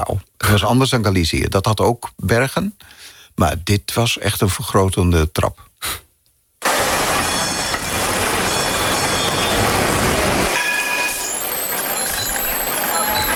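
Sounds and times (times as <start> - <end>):
speech: 0.0 - 6.0
busy city street noise: 6.6 - 13.3
tram wheels rumbling on rails on a city street: 6.6 - 13.3.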